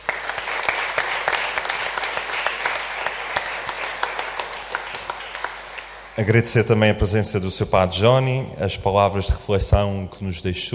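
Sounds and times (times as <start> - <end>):
crowd applauding: 0.0 - 6.4
speech: 6.2 - 10.7.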